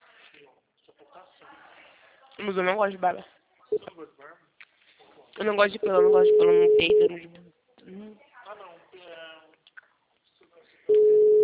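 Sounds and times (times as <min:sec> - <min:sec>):
speech: 0:02.4 - 0:04.5, 0:05.4 - 0:08.7
telephone line tone while a call is placed: 0:06.0 - 0:07.1, 0:10.9 - 0:11.4.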